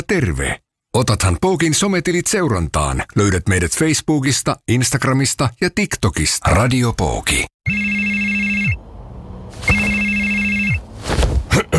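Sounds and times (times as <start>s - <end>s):
speech: 0.1s - 8.3s
telephone ringing in electronic bursts: 7.6s - 8.8s, 9.7s - 10.9s
handling noise rustle: 9.5s - 11.5s.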